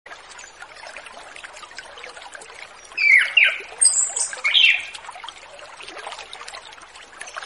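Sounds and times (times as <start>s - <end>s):
orange-headed thrush singing in relaxed ngeplong song style: 3.0s - 4.9s.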